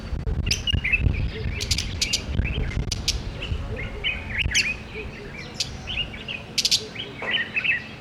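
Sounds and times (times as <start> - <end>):
steady low-pitched rumble: 0.0 - 5.0
budgerigars twittering with scratchy warbles and high squeaks: 0.5 - 7.9.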